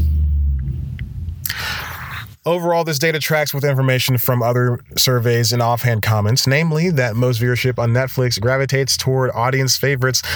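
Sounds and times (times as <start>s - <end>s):
bus engine rumbling heavily: 0.0s - 2.4s, 4.8s - 10.3s
speech: 2.4s - 10.3s.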